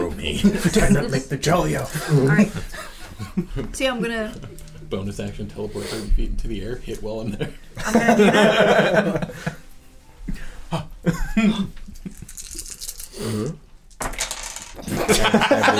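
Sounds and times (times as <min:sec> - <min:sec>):
laughter: 0:00.2 - 0:04.6, 0:07.2 - 0:09.7, 0:14.9 - 0:15.7
speech: 0:00.2 - 0:09.6, 0:10.7 - 0:11.8
dice clattering and tumbling across a hard tabletop: 0:12.1 - 0:13.2, 0:13.9 - 0:15.0.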